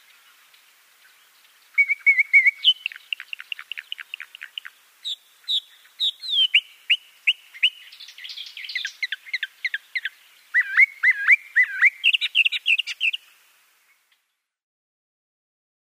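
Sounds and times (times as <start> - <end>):
Eastern Orphean Warbler singing: 0.0 - 14.4.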